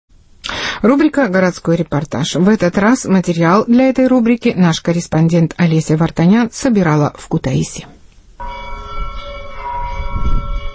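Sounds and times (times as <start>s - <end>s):
speech: 0.8s - 8.6s
cathedral bells in Kutaisi ringing for morning service: 8.4s - 10.7s.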